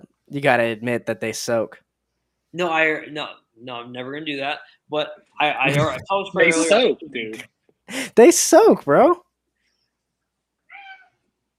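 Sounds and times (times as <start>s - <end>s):
speech: 0.3s - 1.8s, 2.5s - 9.2s
cat meowing: 10.7s - 11.2s.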